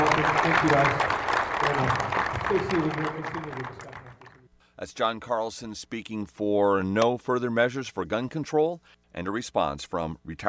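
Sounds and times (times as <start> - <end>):
crowd voices and cheers: 0.0 - 4.4
large crowd applauding: 0.0 - 4.4
speech: 0.5 - 3.9, 4.8 - 10.4.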